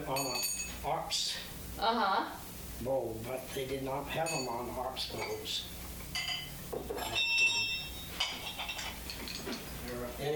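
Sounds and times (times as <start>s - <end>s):
speech: 0.0s - 5.8s
light metallic clinks of a small bell: 0.1s - 0.8s, 4.2s - 10.3s
small old collectible bell ringing: 0.1s - 0.8s, 4.2s - 5.6s, 6.2s - 10.3s.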